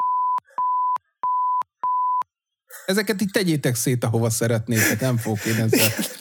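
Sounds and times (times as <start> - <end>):
censor bleep tones at a single pitch: 0.0 - 2.3
speech: 2.9 - 6.1
laughter: 4.7 - 6.1.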